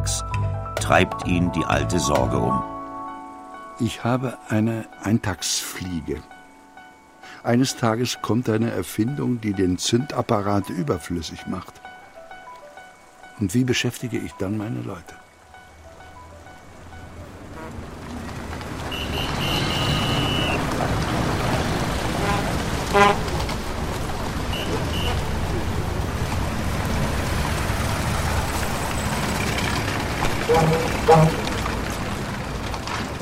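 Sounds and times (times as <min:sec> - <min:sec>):
speech: 0:00.0 - 0:02.7, 0:03.8 - 0:06.3, 0:07.4 - 0:11.8, 0:13.4 - 0:15.2
heavy busy street traffic roar: 0:15.4 - 0:33.2
car horns honking: 0:17.4 - 0:21.0, 0:21.7 - 0:23.5, 0:24.4 - 0:25.6, 0:29.0 - 0:32.1.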